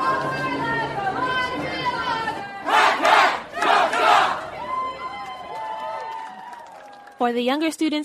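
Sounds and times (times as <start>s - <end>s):
lower chanting voices: 0.0s - 4.6s
first-year university students yelling a rhythmic group cheer: 2.1s - 7.0s
speech: 7.2s - 8.0s.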